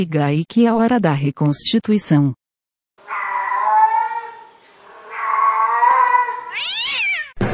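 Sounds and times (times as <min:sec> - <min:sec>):
speech: 0:00.0 - 0:02.4
cat meowing and yowling: 0:03.0 - 0:07.4.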